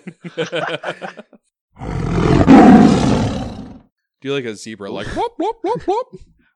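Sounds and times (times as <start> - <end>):
laughter: 0.0 - 1.4
speech: 0.0 - 2.2, 4.2 - 6.4
person imitating a big lion roar: 1.8 - 3.8.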